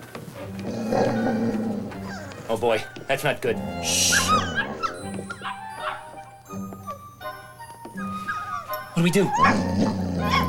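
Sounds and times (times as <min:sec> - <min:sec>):
puppies whimpering: 0:00.9 - 0:10.4
speech: 0:02.5 - 0:04.4, 0:09.0 - 0:10.4
dog barking: 0:04.0 - 0:06.2.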